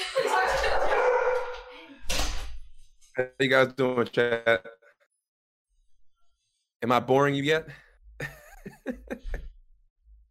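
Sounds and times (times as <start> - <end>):
laughter: 0.0 - 1.1, 8.2 - 9.5
dog barking: 0.7 - 1.7
speech: 3.2 - 4.8, 6.8 - 9.4.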